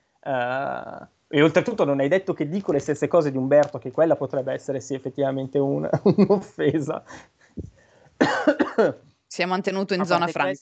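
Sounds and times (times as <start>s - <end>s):
speech: 0.2s - 10.6s
laughter: 5.6s - 7.2s
person coughing: 8.2s - 9.0s.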